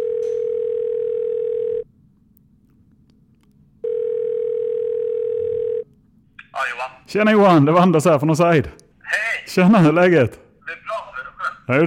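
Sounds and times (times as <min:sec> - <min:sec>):
telephone ringing tone while placing a call: 0:00.0 - 0:01.9, 0:03.8 - 0:05.9
speech: 0:06.8 - 0:10.8, 0:11.7 - 0:11.8.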